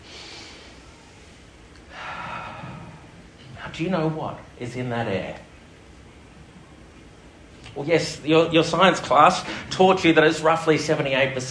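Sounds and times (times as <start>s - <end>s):
deep breath in through the nose: 0.0s - 3.2s
speech: 3.8s - 5.5s, 7.8s - 11.5s.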